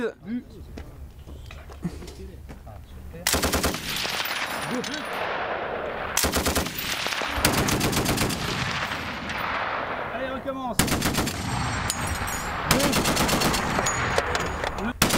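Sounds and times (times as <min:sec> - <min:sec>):
speech: 0:00.0 - 0:00.8
noise: 0:00.0 - 0:15.1
onboard machine guns of light armoured vehicles firing in a shooting exercise: 0:03.3 - 0:05.1, 0:06.2 - 0:09.4, 0:10.8 - 0:14.4, 0:15.0 - 0:15.1.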